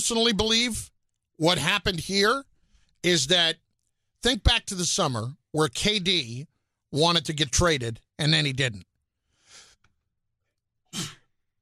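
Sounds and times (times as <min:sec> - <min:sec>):
speech: 0:00.0 - 0:03.6, 0:04.2 - 0:08.9
person sneezing twice: 0:10.9 - 0:11.3.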